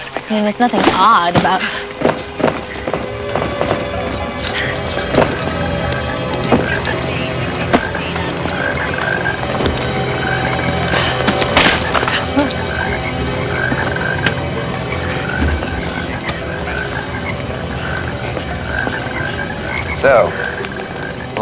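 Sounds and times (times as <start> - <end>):
dense chorus of toads croaking: 0.0 - 21.4
speech: 0.3 - 2.1, 20.0 - 20.4.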